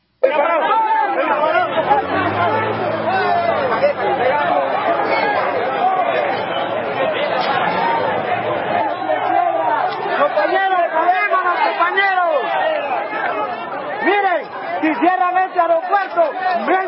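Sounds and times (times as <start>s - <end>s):
large protesting crowd shouting and chanting in a capital city: 0.2s - 16.8s.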